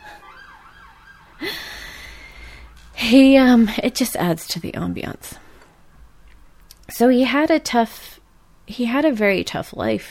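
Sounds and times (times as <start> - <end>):
ambulance siren wailing: 0.0 - 3.0
background hum: 0.0 - 10.0
speech: 3.0 - 5.4, 7.0 - 10.0.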